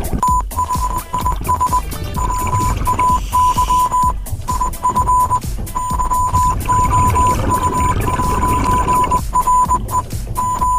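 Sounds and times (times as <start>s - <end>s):
dense throbbing rumble: 0.0s - 10.7s
steady electronic tone keying Morse code: 0.2s - 10.7s.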